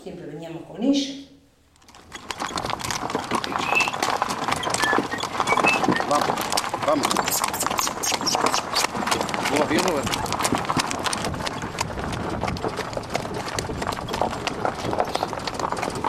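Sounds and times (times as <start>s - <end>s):
speech: 0.0s - 1.4s, 9.8s - 10.2s
horse hooves clip-clopping on a hard surface: 1.7s - 16.0s
birds: 2.0s - 10.0s.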